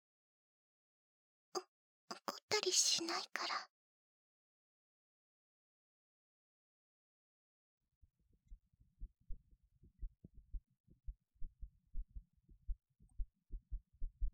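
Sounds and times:
speech: 0:02.7 - 0:03.8
rapid heartbeat heard through a chest: 0:09.0 - 0:14.3.

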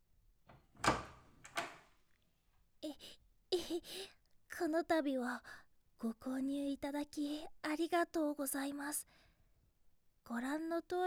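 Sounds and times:
door opening with clunks: 0:00.5 - 0:01.8
speech: 0:03.0 - 0:09.2, 0:10.3 - 0:11.0.

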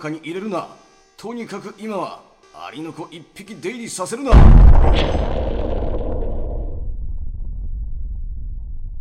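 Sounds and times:
speech: 0:00.0 - 0:05.6
deep booming blast with long rumbling decay: 0:04.3 - 0:08.9.

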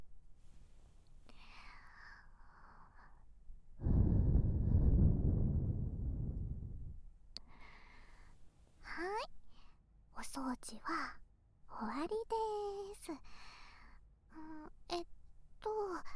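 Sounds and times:
air blown gently into the ear during ear cleaning: 0:03.8 - 0:07.1
speech: 0:10.4 - 0:11.2, 0:11.8 - 0:13.6, 0:14.4 - 0:15.1.

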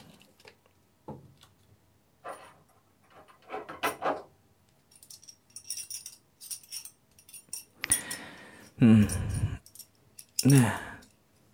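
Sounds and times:
collar buckle jangling while collar is being removed: 0:04.9 - 0:08.2, 0:09.0 - 0:11.1
speech: 0:08.8 - 0:09.4, 0:10.4 - 0:10.8.

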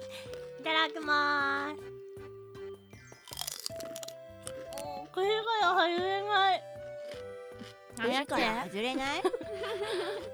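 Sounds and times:
speech: 0:00.6 - 0:01.9, 0:08.0 - 0:10.3
roasted peanuts crunching as they are eaten: 0:03.1 - 0:05.3, 0:05.9 - 0:09.0
laughter: 0:09.1 - 0:10.3.

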